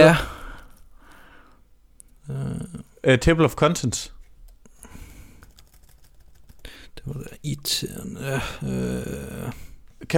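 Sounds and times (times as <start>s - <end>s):
speech: 0.0s - 0.3s, 2.3s - 4.2s, 7.0s - 10.1s
typing on a computer keyboard: 5.1s - 6.7s.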